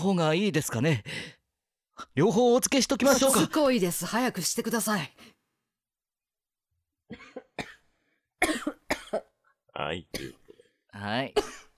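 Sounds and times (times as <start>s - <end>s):
speech: 0.0s - 1.4s, 2.0s - 5.4s, 7.1s - 7.7s, 9.8s - 10.4s, 11.0s - 11.6s
choking cough: 7.1s - 9.4s, 10.1s - 10.7s, 11.4s - 11.7s.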